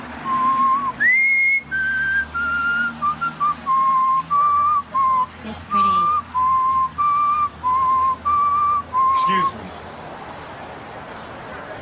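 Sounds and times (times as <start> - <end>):
man whistling a slow lyrical melody: 0.2 - 5.4, 6.0 - 9.6.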